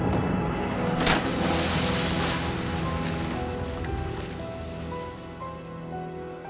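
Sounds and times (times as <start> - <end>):
rough sea surf waves crashing: 0.8 - 5.9.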